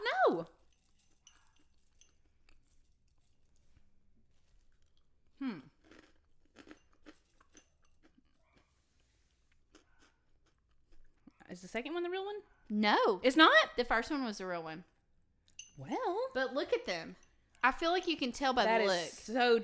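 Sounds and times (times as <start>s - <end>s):
crunchy snack being bitten and chewed: 0.9s - 11.4s
speech: 11.6s - 14.9s, 15.8s - 19.6s.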